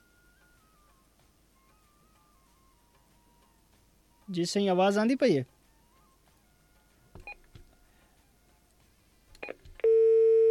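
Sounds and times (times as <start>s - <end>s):
speech: 4.3s - 5.6s
telephone line tone after a dropped call: 9.8s - 10.5s.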